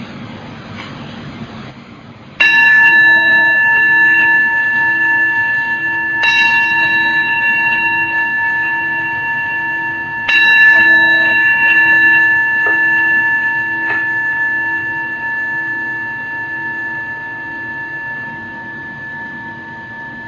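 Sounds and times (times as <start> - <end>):
meditation bell struck with shimmering overtones: 2.4 - 20.2.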